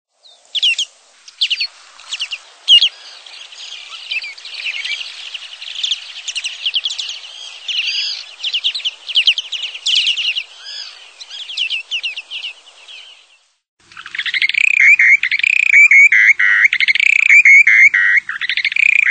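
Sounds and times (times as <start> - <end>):
Short-billed Dowitcher: 0.5 - 13.3, 13.9 - 19.0.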